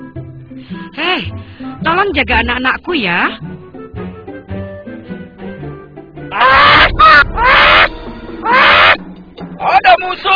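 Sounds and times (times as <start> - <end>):
speech: 0.7 - 3.5
crow cawing harshly: 6.4 - 9.0.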